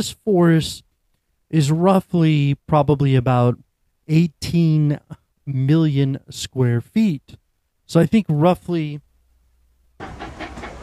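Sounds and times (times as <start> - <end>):
speech: 0.0 - 0.9, 1.5 - 9.1
train sound effect with rumble, hiss and chugging: 10.0 - 10.8.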